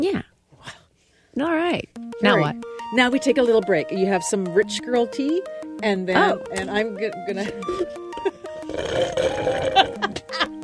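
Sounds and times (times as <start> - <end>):
speech: 1.4 - 10.5
person blowing wet raspberry noises imitating farts: 8.4 - 10.3
laughter: 9.6 - 10.6.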